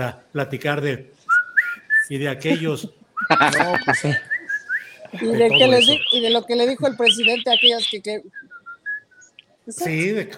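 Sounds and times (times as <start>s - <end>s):
speech: 0.0s - 1.2s, 2.1s - 4.3s, 5.1s - 8.5s, 9.6s - 10.3s
whistled tune: 1.3s - 2.1s, 3.2s - 5.0s, 7.1s - 9.4s
person laughing: 3.2s - 4.4s.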